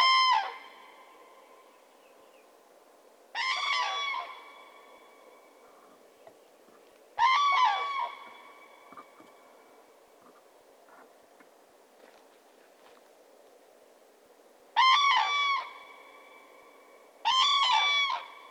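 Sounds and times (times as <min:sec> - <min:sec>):
common crane Grus grus trumpeting calls: 0:03.4 - 0:04.9, 0:07.2 - 0:09.3, 0:14.8 - 0:16.1, 0:17.2 - 0:18.5.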